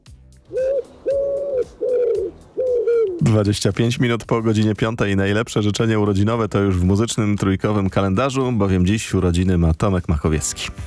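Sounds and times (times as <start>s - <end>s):
dove cooing: 0.5s - 3.3s
speech: 3.3s - 10.8s.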